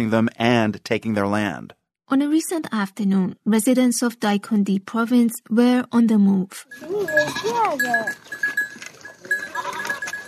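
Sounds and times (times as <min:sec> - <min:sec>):
speech: 0:00.0 - 0:08.6
goat bleating in a village in Dikundi province: 0:06.7 - 0:08.3, 0:09.2 - 0:10.2.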